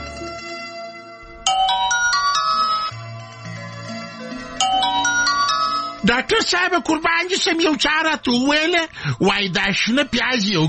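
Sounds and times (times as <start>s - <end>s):
telephone ringing with a loud electronic ringtone for a studio call-in: 1.5s - 6.1s
speech: 6.5s - 10.6s.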